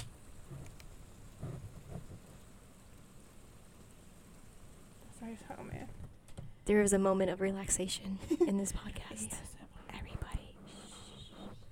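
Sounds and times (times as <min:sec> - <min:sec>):
steady rain falling: 0:00.0 - 0:08.8
speech: 0:05.3 - 0:06.1, 0:06.7 - 0:09.6.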